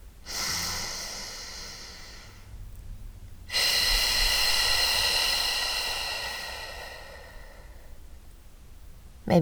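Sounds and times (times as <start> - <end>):
rushing exhale through pursed lips: 0.2 - 2.5, 3.5 - 8.1
long airy inhale: 0.2 - 2.6, 3.5 - 8.2.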